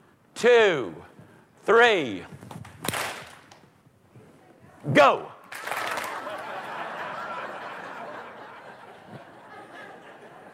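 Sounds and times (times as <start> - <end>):
speech: 0.4 - 2.4, 4.8 - 5.3
large audience clapping: 5.4 - 6.8
people chuckling: 6.0 - 10.5.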